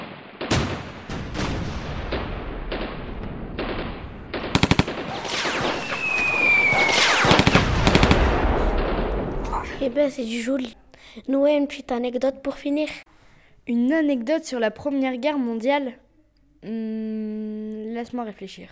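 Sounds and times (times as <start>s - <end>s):
booming explosions: 0.0s - 10.2s
high whistling streak of an incoming shell: 2.3s - 9.6s
rapid machine-gun bursts: 4.3s - 9.2s
speech: 9.8s - 13.0s, 13.6s - 16.0s, 16.6s - 18.7s.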